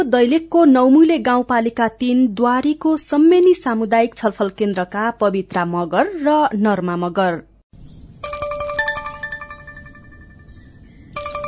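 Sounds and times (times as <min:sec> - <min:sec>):
speech: 0:00.0 - 0:07.5
faint noise: 0:00.0 - 0:11.4
phone electronic ringtone with bright chiming melody: 0:08.2 - 0:11.4.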